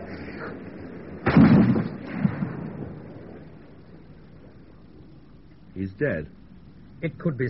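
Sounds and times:
low hiss: 0.0 - 7.4
faint second rifle report: 1.2 - 3.0
rifle shot fired outdoors: 1.2 - 3.6
speech: 5.8 - 6.4, 7.0 - 7.4.

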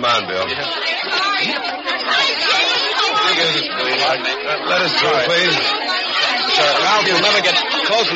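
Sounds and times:
speech: 0.0 - 2.7, 3.3 - 8.1
dense excited crowd of young voices chattering and shouting: 0.0 - 8.1.

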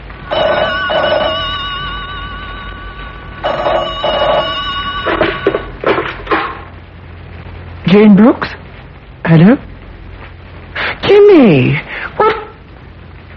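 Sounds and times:
telephone ringing with a warbling electric bell: 0.2 - 5.8
sharp clattering knocks: 3.5 - 6.7
speech: 7.9 - 8.6, 9.3 - 9.7, 11.1 - 12.1.

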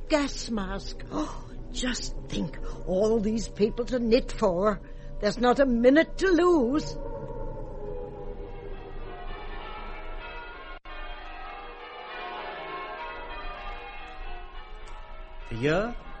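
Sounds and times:
church bells pealing: 0.0 - 16.1
speech: 0.1 - 7.1, 15.6 - 16.1.

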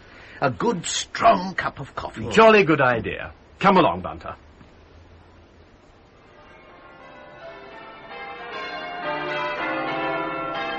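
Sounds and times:
speech: 0.4 - 4.4
church bells of Fenchurch St. Paul pealing: 6.2 - 10.7.

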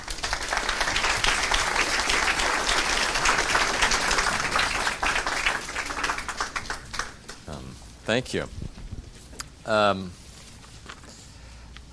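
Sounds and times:
audience applause welcoming back a speaker: 0.0 - 7.6
speech: 8.1 - 8.6, 9.7 - 10.2.

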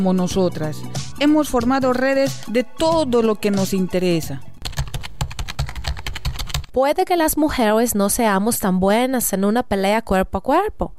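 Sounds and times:
speech: 0.0 - 4.5, 6.8 - 10.9
rapid typing on a computer keyboard: 4.6 - 6.8.

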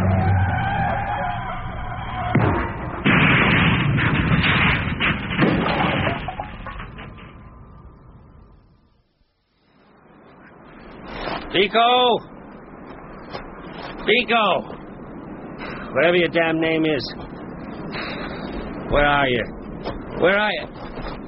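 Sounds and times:
car engine: 0.0 - 3.1
car tires shot out: 0.0 - 7.4
speech: 11.6 - 12.3, 14.1 - 14.8, 15.9 - 17.2, 18.9 - 19.5, 20.2 - 20.8.

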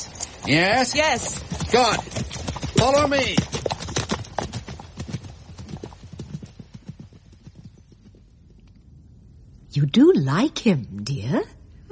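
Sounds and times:
horses galloping: 0.0 - 9.4
speech: 0.4 - 2.2, 2.8 - 3.6, 9.8 - 11.6.

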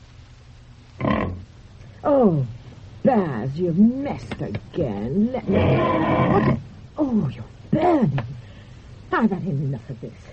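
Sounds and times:
steady low hum: 0.0 - 10.3
pig grunting: 1.0 - 1.4, 5.5 - 6.6
speech: 2.0 - 8.4, 9.1 - 10.3.

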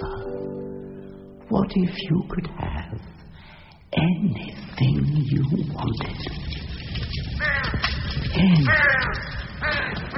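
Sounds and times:
speech: 1.5 - 3.2, 3.9 - 6.6, 7.7 - 10.1
several crows cawing: 7.2 - 10.1.

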